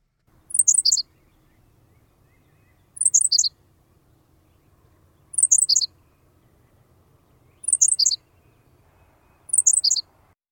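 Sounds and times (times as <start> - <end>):
faint low hum: 0.0 - 10.3
Henslow's sparrow singing: 0.2 - 10.3.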